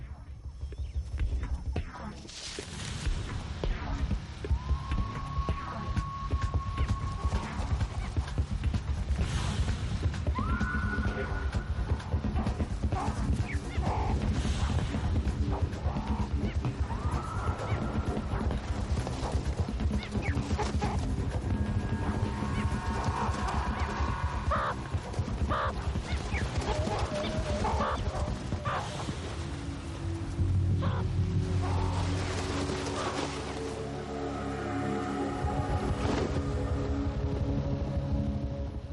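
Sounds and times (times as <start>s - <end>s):
steady dense wash: 0.0s - 38.9s
meerkat sentry alarm calls warning of an eagle: 25.5s - 28.8s.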